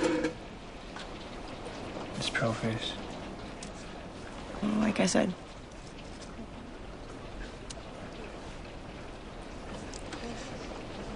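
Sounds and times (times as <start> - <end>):
steady rain falling: 0.0 - 11.1
speech: 2.2 - 3.0, 4.6 - 5.4.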